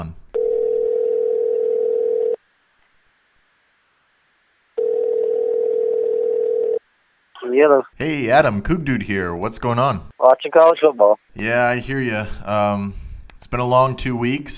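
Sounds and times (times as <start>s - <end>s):
speech: 0.0s - 0.2s, 7.6s - 14.5s
telephone ringing tone while calling someone: 0.3s - 2.4s, 4.8s - 6.8s.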